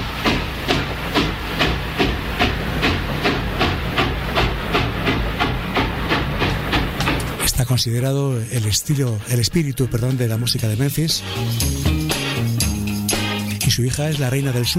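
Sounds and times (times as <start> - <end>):
hissing bursts of steam-like noise: 0.0 - 7.4
train chugging: 0.0 - 14.7
speech: 7.7 - 11.9, 13.8 - 14.7.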